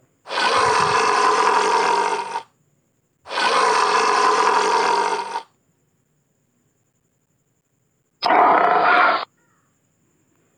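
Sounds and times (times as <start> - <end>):
lion caught in a hunter's net in a forest roaring: 0.3 - 2.4, 3.3 - 5.4, 8.2 - 9.3.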